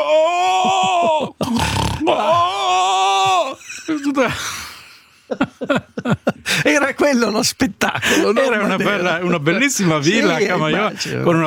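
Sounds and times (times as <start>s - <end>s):
laughter: 0.3s - 11.4s
man's voice imitating snoring mixed with rattling groans: 1.4s - 2.2s
speech: 4.1s - 4.6s, 5.3s - 11.4s.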